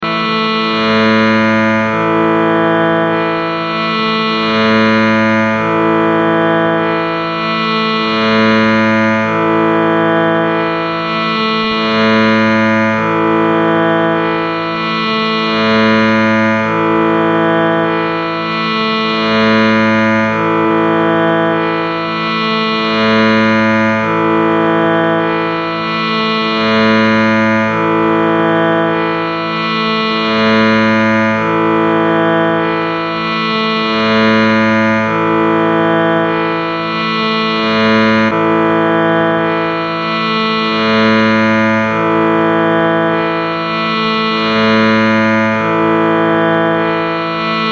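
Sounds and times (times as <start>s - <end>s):
sruthi drone tone in A: 0.0s - 47.7s.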